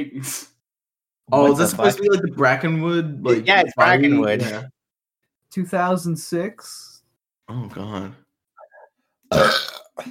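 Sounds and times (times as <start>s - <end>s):
speech: 0.0s - 0.5s, 1.3s - 4.8s, 5.5s - 6.9s, 7.5s - 8.2s, 9.3s - 10.0s
person burping: 7.5s - 10.0s.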